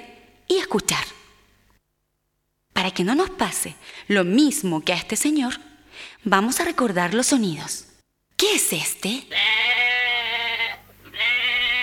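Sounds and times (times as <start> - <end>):
speech: 0.7 - 1.2, 3.0 - 9.8
sheep bleating: 9.3 - 11.8.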